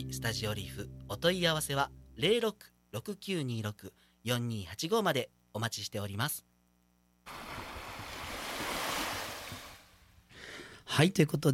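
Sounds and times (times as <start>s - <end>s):
speech: 0.0s - 6.5s, 7.2s - 7.6s, 10.9s - 11.5s
ocean waves washing onto a beach: 7.3s - 9.8s.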